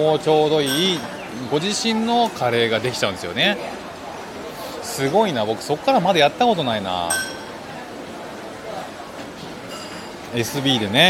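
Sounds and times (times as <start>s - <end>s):
speech: 0.0s - 3.8s, 5.0s - 7.3s, 10.3s - 11.0s
bustle in an open-air hawker centre: 0.0s - 11.0s
overlapping crowd chatter in an open-air hawker centre: 0.0s - 11.0s
faint clinks of dishes and utensils in a hawker centre: 0.6s - 1.3s, 7.0s - 7.6s, 9.6s - 10.3s.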